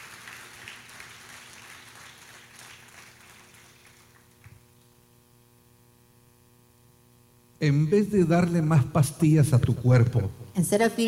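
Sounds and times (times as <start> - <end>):
congregation applauding during a church service: 0.0 - 4.7
speech: 7.6 - 11.0.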